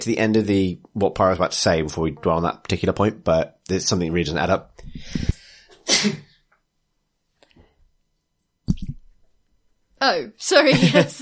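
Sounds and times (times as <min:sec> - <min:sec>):
speech: 0:00.0 - 0:06.3, 0:10.0 - 0:11.2
distant sneeze: 0:05.7 - 0:06.3.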